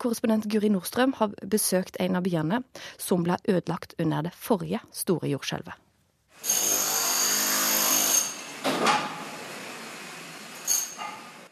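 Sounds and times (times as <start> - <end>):
speech: 0.0 - 5.8, 6.4 - 6.7
construction drilling in L'Aquila, Italy: 6.4 - 11.4.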